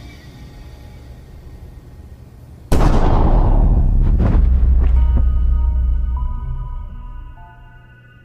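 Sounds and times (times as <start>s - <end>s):
pistol gunshot: 2.7s - 4.2s
sustained tones: 4.6s - 8.2s.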